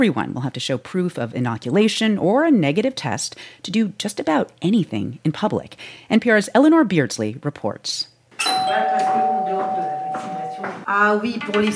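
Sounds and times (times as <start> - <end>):
speech: 0.0 - 9.3, 10.2 - 11.7
doorbell ringing with a long buzzing tone in a doctor's office: 8.4 - 10.8.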